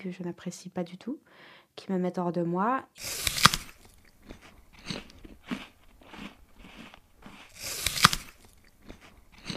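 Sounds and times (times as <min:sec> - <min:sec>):
speech: 0:00.0 - 0:03.4
crisp crunches of biting into an apple: 0:03.0 - 0:09.5
soft wet chewing: 0:03.0 - 0:09.5.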